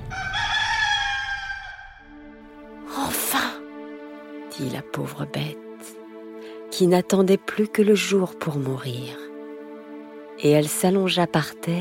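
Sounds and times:
rooster crowing: 0.0 - 2.2
speech: 4.6 - 5.6, 6.8 - 9.3, 10.4 - 11.7.

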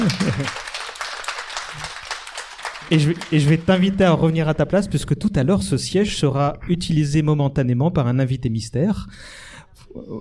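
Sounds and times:
audience applauding: 0.0 - 4.7
speech: 0.1 - 0.7, 2.9 - 10.1.

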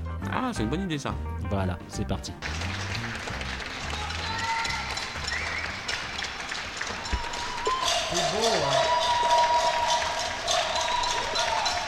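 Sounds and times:
speech: 0.3 - 2.8, 8.1 - 9.0
neighbours applauding in a courtyard at 8pm: 2.4 - 11.8
faint whistles: 5.2 - 5.8.

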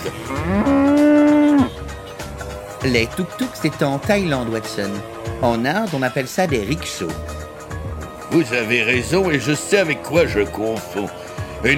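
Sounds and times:
speech: 0.0 - 0.8, 2.8 - 7.4, 8.3 - 11.7
cow mooing in Bombay India: 0.2 - 1.9.

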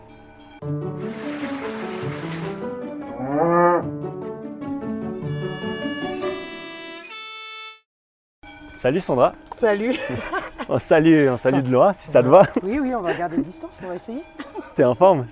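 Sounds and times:
cows mooing on an alpine pasture: 3.1 - 3.9
speech: 8.8 - 15.3
laughter: 9.8 - 14.8.

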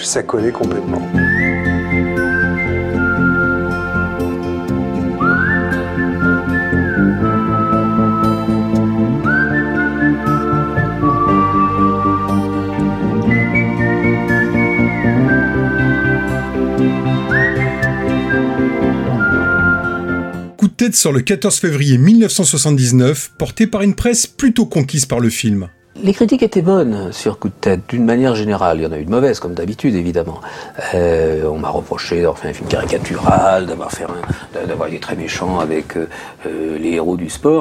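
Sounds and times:
speech: 0.0 - 1.4, 20.8 - 37.5
full orchestral film soundtrack music: 0.0 - 20.6
whistled melody in film soundtrack: 1.1 - 20.6.

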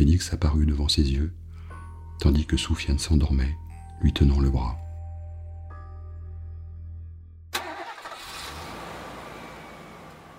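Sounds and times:
speech: 0.0 - 1.4, 2.2 - 4.8
brand-new pick-up truck engine starting and idling: 7.5 - 10.3.

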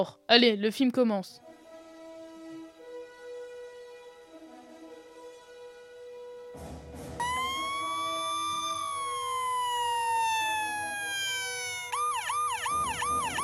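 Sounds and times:
speech: 0.0 - 1.4
toy ambulance truck siren wailing in a playroom: 7.2 - 13.4.

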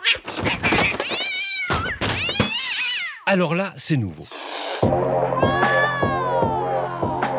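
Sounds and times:
two Persian cats fighting and caterwauling: 0.0 - 3.2, 5.4 - 7.3
speech: 3.3 - 5.6.

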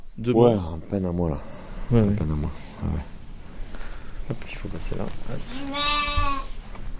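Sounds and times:
speech: 0.2 - 3.1, 4.3 - 6.4
soft rustling in a sheep pen: 1.9 - 6.9
one-month-old lamb bleating in a sheep pen: 5.5 - 6.5.

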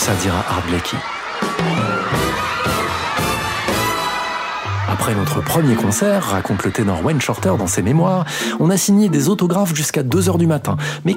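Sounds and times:
speech: 0.0 - 1.9, 5.0 - 11.1
large crowd cheering: 0.0 - 10.5
laughter: 0.0 - 10.5
young girls shrieking and screaming: 0.9 - 7.8.

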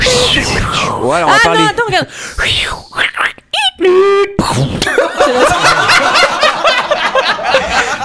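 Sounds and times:
voice imitating a plane exploding: 0.0 - 1.1, 2.4 - 5.0
speech: 1.0 - 6.2
overlapping laughter: 4.8 - 8.0.

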